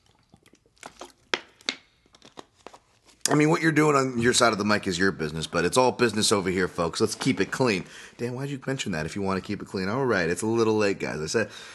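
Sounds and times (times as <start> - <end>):
person sipping water: 0.0 - 3.4
small wet mouth sounds: 0.0 - 3.4
plastic bottle crinkling: 0.0 - 3.6
speech: 3.3 - 11.7.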